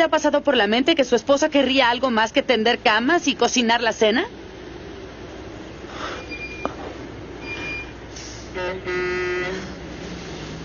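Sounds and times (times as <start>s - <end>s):
speech: 0.0s - 4.4s, 8.6s - 9.3s
school bus engine rumbling: 4.3s - 10.6s
school bus horn blast: 8.5s - 9.8s.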